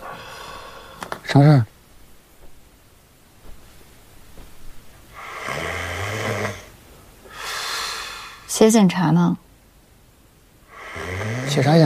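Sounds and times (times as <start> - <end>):
speech: 1.3 - 1.7, 8.6 - 9.4, 11.6 - 11.8
loud snoring: 5.2 - 6.7, 10.7 - 11.8.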